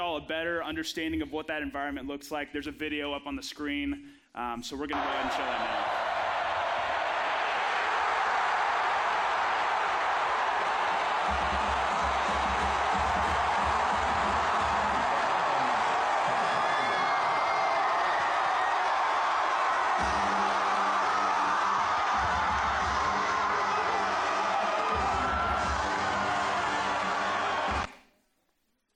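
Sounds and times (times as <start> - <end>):
speech: 0.0 - 6.2
huge stadium crowd roaring: 4.9 - 27.9.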